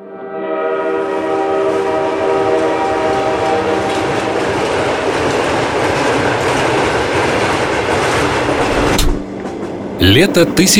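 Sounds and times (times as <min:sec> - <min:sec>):
train horn sounding a sustained tone: 0:00.0 - 0:05.0
train passing through Kamen-na-Obi with wheels roaring and clattering: 0:03.6 - 0:09.9
speech: 0:10.0 - 0:10.7.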